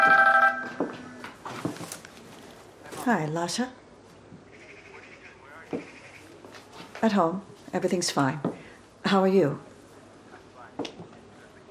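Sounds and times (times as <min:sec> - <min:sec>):
mobile phone ringing with a short electronic melody in an apartment: 0:00.0 - 0:01.2
soft rustling and handling noises of a phone pulled from a purse: 0:00.1 - 0:04.2, 0:05.7 - 0:07.8
speech: 0:03.1 - 0:03.8, 0:07.0 - 0:09.7.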